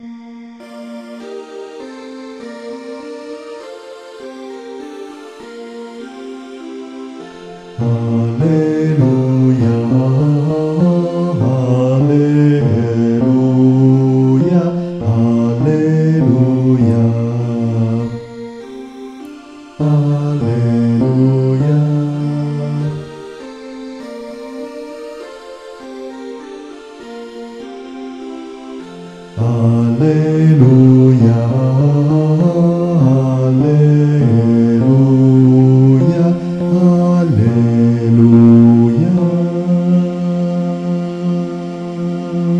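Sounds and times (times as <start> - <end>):
bass voices singing an alleluia: 7.8 - 18.3, 19.8 - 23.1, 29.4 - 42.5.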